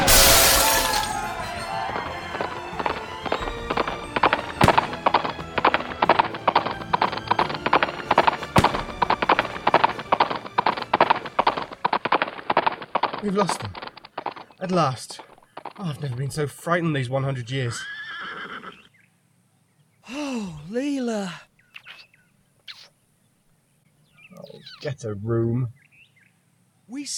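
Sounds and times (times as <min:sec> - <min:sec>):
glass breaking: 0:00.0 - 0:01.8
horses galloping: 0:01.1 - 0:16.6
speech: 0:13.3 - 0:13.8, 0:14.6 - 0:17.9, 0:25.0 - 0:25.8.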